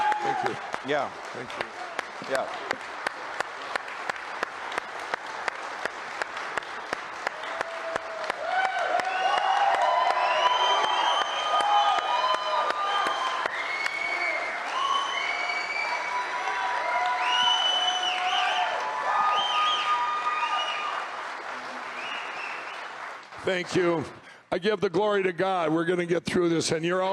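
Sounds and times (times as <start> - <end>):
cheers and whoops: 0.0 - 0.8, 7.2 - 21.2
large audience applauding: 0.0 - 24.4
speech: 0.4 - 3.0, 23.5 - 27.1
whistling: 10.1 - 11.7, 12.8 - 16.3, 17.1 - 18.7, 19.3 - 21.0, 21.9 - 22.9.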